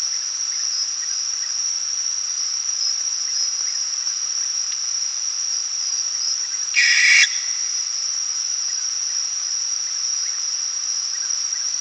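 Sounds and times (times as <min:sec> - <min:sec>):
high shrill cricket chorus: 0:00.0 - 0:11.7
barn owl fledgling giving a harsh hissing screech: 0:06.8 - 0:07.8.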